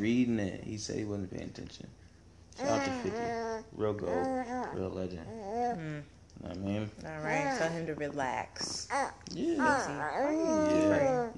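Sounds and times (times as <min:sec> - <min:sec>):
speech: 0:00.0 - 0:02.0, 0:02.6 - 0:11.3
toddler girl babbling in a sing-song voice: 0:02.6 - 0:05.8, 0:07.2 - 0:11.3.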